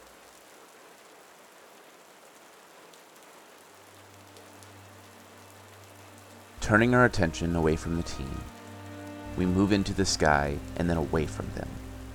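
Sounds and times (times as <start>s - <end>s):
light rain falling: 0.0s - 12.1s
speech: 6.7s - 8.6s, 9.4s - 11.8s.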